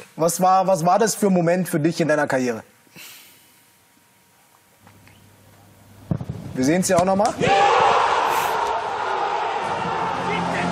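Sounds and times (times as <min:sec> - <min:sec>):
speech: 0:00.2 - 0:03.1, 0:06.6 - 0:07.8
large stadium crowd cheering after a football goal: 0:07.3 - 0:10.7.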